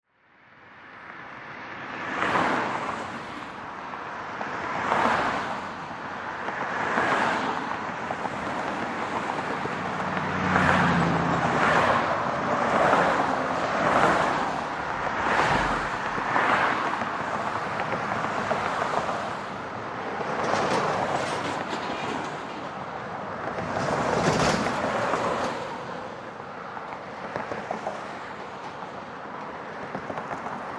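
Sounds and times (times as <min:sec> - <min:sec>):
expressway automobile traffic driving by left to right: 0:00.1 - 0:30.7.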